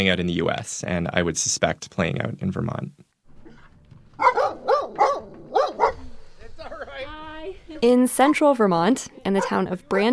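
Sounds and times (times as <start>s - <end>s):
speech: 0.0s - 3.1s, 7.8s - 10.1s
puppy's eager whining yips: 4.2s - 6.0s
excited Labrador puppy barking in high-pitched bursts: 4.2s - 6.1s, 9.4s - 9.6s.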